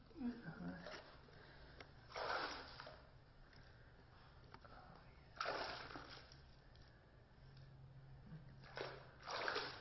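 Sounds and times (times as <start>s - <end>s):
water splashing while rinsing off: 2.1s - 3.1s, 5.4s - 6.4s, 8.6s - 9.7s.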